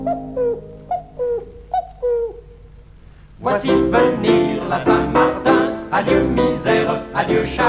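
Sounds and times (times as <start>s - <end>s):
cuckoo calling: 0.0s - 2.8s
speech: 3.4s - 7.6s.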